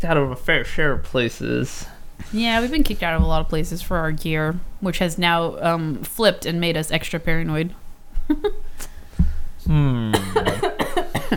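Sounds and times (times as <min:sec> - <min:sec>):
speech: 0:00.0 - 0:08.9, 0:09.6 - 0:11.3
voiced groan: 0:09.7 - 0:10.5
person coughing: 0:09.8 - 0:11.3.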